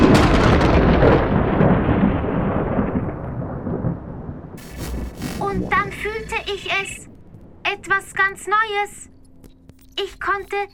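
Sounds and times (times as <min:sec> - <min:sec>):
loud thunderclap after lightning: 0:00.0 - 0:07.6
hiss of rain: 0:04.6 - 0:07.1
speech: 0:07.8 - 0:09.1, 0:10.0 - 0:10.7.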